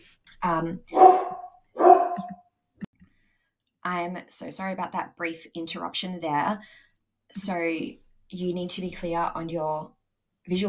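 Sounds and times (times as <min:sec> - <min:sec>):
speech: 0:00.4 - 0:01.1, 0:03.9 - 0:10.6
dog barking: 0:00.9 - 0:02.3.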